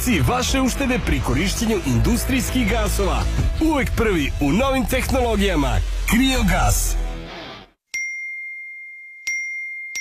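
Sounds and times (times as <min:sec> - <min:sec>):
speech: 0:00.0 - 0:07.0
phone message notification dings: 0:08.0 - 0:09.9.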